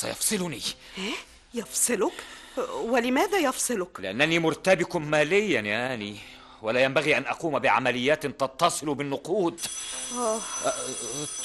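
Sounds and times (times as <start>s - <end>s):
speech: 0.0s - 11.4s
house doorbell ringing in harmonic tones: 9.6s - 11.4s.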